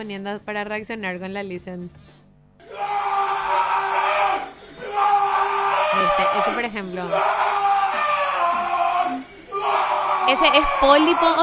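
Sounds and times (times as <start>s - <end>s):
speech: 0.0s - 2.2s, 6.0s - 7.4s, 10.3s - 11.4s
fan screaming a long goal shout: 2.6s - 11.4s.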